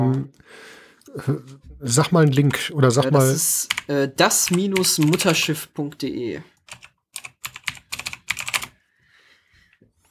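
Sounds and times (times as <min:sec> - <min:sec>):
speech: 0:00.1 - 0:06.9
typing links on a computer keyboard: 0:03.7 - 0:05.3, 0:06.7 - 0:08.8.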